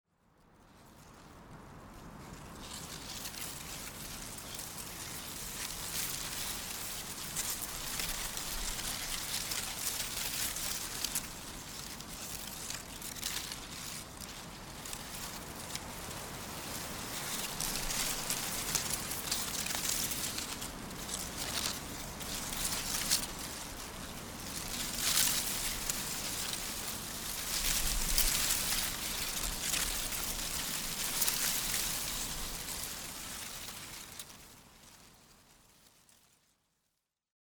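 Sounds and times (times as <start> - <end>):
leaves rustling in wind: 0.4 - 36.6.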